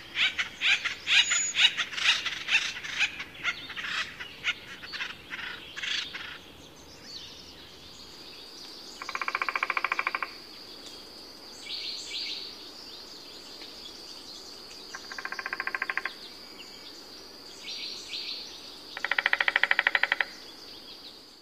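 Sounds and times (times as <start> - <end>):
acorn woodpecker raspy calls: 0.0 - 6.5, 9.0 - 10.4, 14.9 - 16.2, 19.0 - 20.4.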